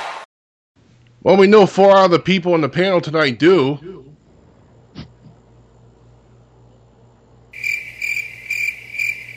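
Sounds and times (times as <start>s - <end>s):
speech: 1.3s - 4.1s
crickets chirping: 7.5s - 9.3s.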